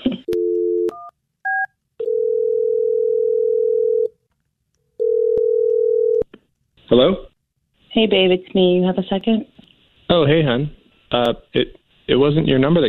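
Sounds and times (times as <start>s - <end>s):
telephone dial tone humming: 0.3s - 1.0s, 2.0s - 4.1s, 5.0s - 6.2s
speech: 6.9s - 7.3s, 8.0s - 9.5s, 10.1s - 12.8s.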